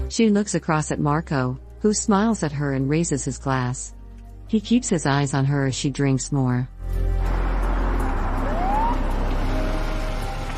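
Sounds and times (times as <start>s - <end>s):
speech: 0.1s - 7.3s
low engine rumble: 6.9s - 10.5s
police car siren: 7.3s - 10.5s.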